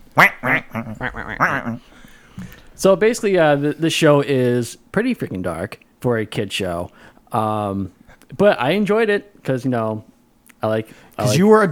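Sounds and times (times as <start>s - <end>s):
speech: 0.2s - 1.1s, 2.8s - 11.7s
human voice imitating nasal raspy duck quacks: 0.2s - 1.8s.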